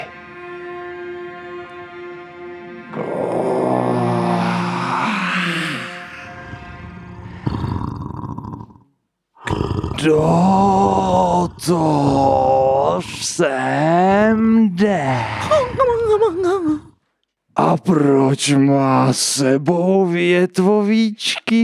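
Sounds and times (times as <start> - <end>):
low humming drone: 2.4 - 8.0
speech: 2.9 - 3.2, 10.0 - 10.7, 11.6 - 12.4, 13.0 - 16.8, 17.8 - 21.6
loud growling bursts: 2.9 - 16.2
deep rasping monster roar: 2.9 - 16.9.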